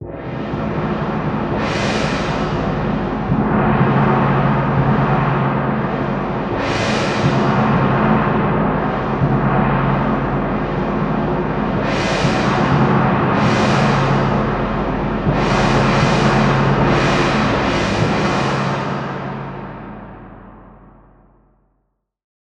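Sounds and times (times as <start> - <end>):
cymbal: 0.0 - 21.5.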